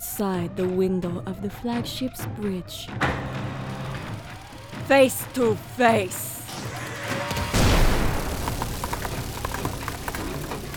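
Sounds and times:
speech: 0:00.2 - 0:03.4, 0:04.9 - 0:06.7
rattle of smaller sharp bursts and clanks: 0:03.0 - 0:10.7
loud heavy cannon blast: 0:07.3 - 0:10.7.

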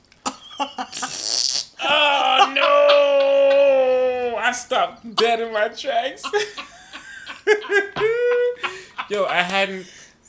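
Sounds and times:
laughter: 0:00.2 - 0:10.2
voice imitating a fart with sputtering bursts and airy hiss: 0:01.0 - 0:02.1
speech: 0:04.5 - 0:06.7, 0:07.4 - 0:08.4, 0:09.1 - 0:10.0.

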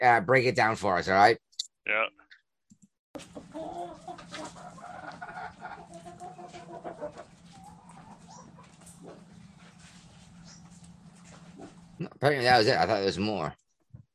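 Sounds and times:
speech: 0:00.0 - 0:02.2, 0:12.2 - 0:13.6
chickens clucking: 0:03.2 - 0:11.9
busy noisy farmyard background: 0:03.2 - 0:13.5.

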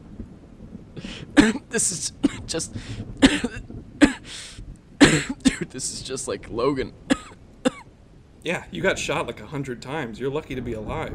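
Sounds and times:
raspy breathy exhale: 0:01.0 - 0:01.4, 0:02.7 - 0:03.1, 0:04.2 - 0:04.6
speech: 0:01.0 - 0:03.7, 0:05.2 - 0:07.2, 0:08.4 - 0:11.1
person coughing: 0:01.0 - 0:05.9, 0:07.1 - 0:07.8.

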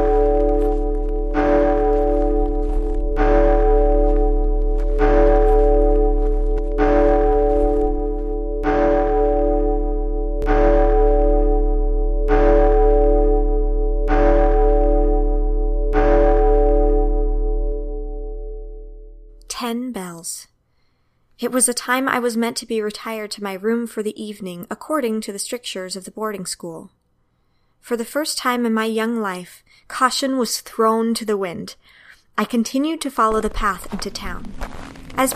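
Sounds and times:
church bells chiming in the evening amid a fine mist: 0:00.0 - 0:18.4
speech: 0:21.5 - 0:27.0, 0:27.8 - 0:35.3.

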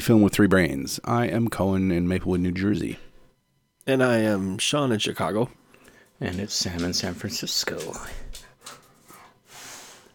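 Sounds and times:
speech: 0:00.0 - 0:03.1, 0:03.9 - 0:05.6, 0:06.2 - 0:08.3
dog feet pattering across the floor: 0:05.9 - 0:09.3.

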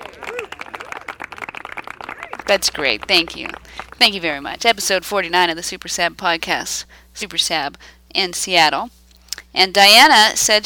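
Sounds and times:
voices calling out and cheering: 0:00.0 - 0:04.3
small group applauding: 0:00.0 - 0:04.5
speech: 0:02.5 - 0:10.6.

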